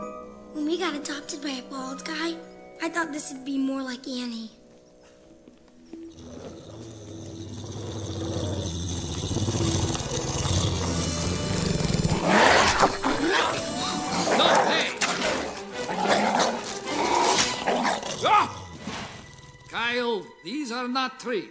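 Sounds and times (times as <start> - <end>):
speech: 0.8 - 4.6, 21.2 - 21.4
fluffy dog growling and barking: 6.0 - 18.7.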